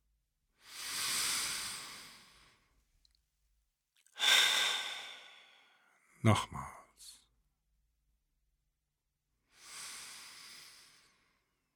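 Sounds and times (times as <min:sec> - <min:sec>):
long deep breath drawn in slowly: 0:00.6 - 0:02.7, 0:04.2 - 0:05.8, 0:09.5 - 0:11.6
speech: 0:06.2 - 0:07.2.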